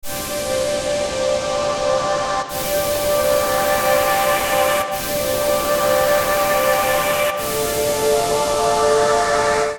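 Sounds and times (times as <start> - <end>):
space pad chords in C minor: 0.1 - 9.7.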